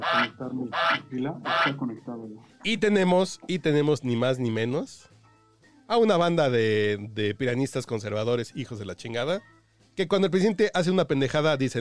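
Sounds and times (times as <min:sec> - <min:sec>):
voice imitating a goose honking: 0:00.0 - 0:02.0
speech: 0:00.4 - 0:05.2, 0:05.9 - 0:11.7.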